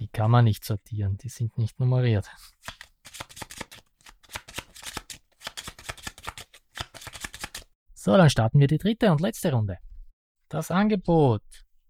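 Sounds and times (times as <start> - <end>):
speech: 0.2 - 2.8, 8.0 - 9.9, 10.5 - 11.6
playing cards shuffled by hand during a tabletop card game: 2.6 - 7.7.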